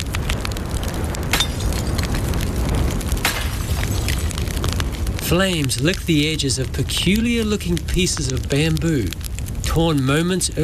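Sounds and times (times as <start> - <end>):
dense rumbling din: 0.0 - 10.6
clay pots shattering on the ground: 1.3 - 1.9, 3.2 - 4.3
speech: 5.3 - 9.2, 9.8 - 10.6.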